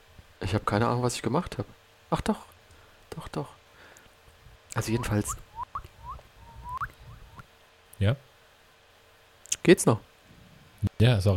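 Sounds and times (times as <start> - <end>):
speech: 0.5 - 2.5, 3.2 - 3.6, 4.8 - 5.5, 8.0 - 8.3, 9.6 - 10.1, 11.0 - 11.3
birds chirping: 4.7 - 7.5.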